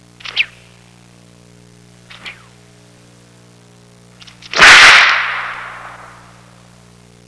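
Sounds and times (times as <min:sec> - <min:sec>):
whip crack: 0:00.2 - 0:00.6, 0:02.1 - 0:02.5, 0:04.2 - 0:06.4.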